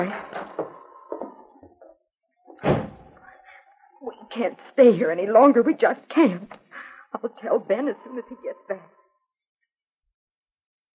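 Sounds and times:
speech: 0:00.0 - 0:00.4, 0:04.4 - 0:09.0
door shut firmly as someone leaves: 0:02.5 - 0:03.1.

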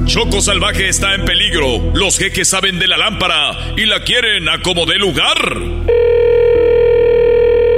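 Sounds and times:
speech: 0:00.1 - 0:06.1
low buzzing hum: 0:05.7 - 0:07.7
telephone sounding a steady electronic tone: 0:05.9 - 0:07.7.

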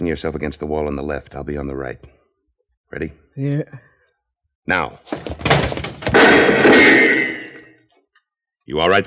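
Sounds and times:
speech: 0:00.0 - 0:02.2, 0:02.9 - 0:03.9, 0:04.7 - 0:05.4, 0:08.7 - 0:09.0
heavy wooden thumps of a door being burst open: 0:05.1 - 0:07.1
debris rattling: 0:05.1 - 0:07.7
loud crash of a door bursting open: 0:05.1 - 0:07.7.

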